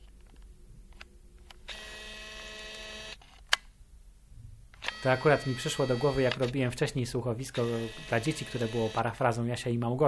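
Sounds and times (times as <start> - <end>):
photo camera zoom lens motor whirring: 1.6 - 3.4, 4.8 - 6.6, 7.6 - 9.1
speech: 5.0 - 10.0.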